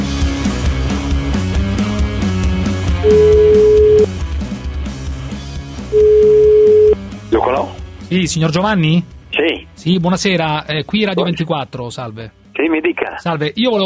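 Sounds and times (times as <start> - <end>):
music: 0.0 - 13.8
telephone ringback tones: 3.0 - 4.1, 5.9 - 7.0
speech: 8.1 - 13.8.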